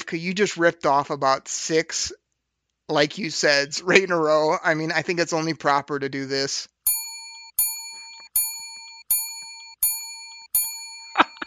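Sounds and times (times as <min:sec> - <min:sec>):
laughter: 0:00.0 - 0:02.1, 0:02.9 - 0:06.6, 0:11.2 - 0:11.4
speech: 0:00.1 - 0:02.2, 0:02.9 - 0:06.7
bright bell struck as a sound effect: 0:06.8 - 0:11.4.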